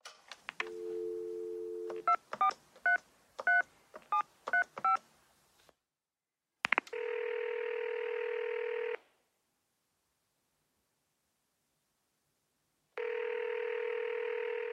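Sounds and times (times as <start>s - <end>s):
telephone dial tone: 0.6s - 2.5s, 6.9s - 9.0s, 13.0s - 14.7s
telephone keypad tones as a number is dialed: 0.6s - 5.0s.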